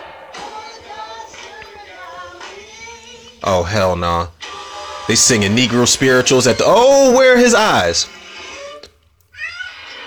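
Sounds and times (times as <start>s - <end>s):
speech: 3.4s - 4.4s, 5.1s - 8.2s
cat yowling with strained drawn-out cries: 9.4s - 10.0s.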